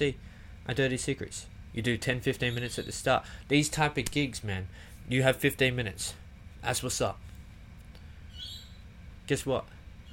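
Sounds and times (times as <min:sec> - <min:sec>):
speech: 0:00.0 - 0:07.3, 0:09.3 - 0:09.8
pet bird chirping: 0:02.4 - 0:03.1, 0:08.3 - 0:08.9.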